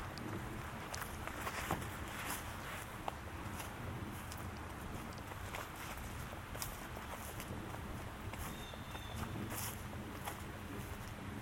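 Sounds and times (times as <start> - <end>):
crunching footsteps in a forest: 0.0 - 11.4.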